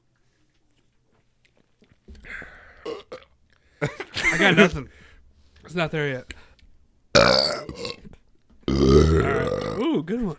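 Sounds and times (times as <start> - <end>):
loud deep burp after chugging beer: 2.2 - 3.3, 7.2 - 10.0
laughter: 3.8 - 5.0
speech: 3.8 - 5.0, 5.7 - 6.3, 8.8 - 10.3.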